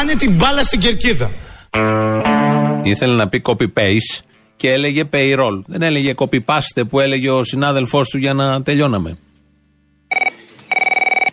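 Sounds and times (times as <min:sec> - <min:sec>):
speech: 0:00.0 - 0:02.2, 0:02.8 - 0:09.3
landline telephone ringing with electronic trills: 0:10.1 - 0:11.3.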